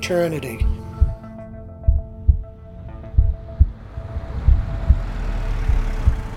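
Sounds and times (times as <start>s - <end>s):
speech: 0.1s - 0.8s
low droning hum: 0.6s - 6.3s
slow steady heartbeat thumping: 0.6s - 6.3s
rushing windy noise: 3.2s - 6.3s.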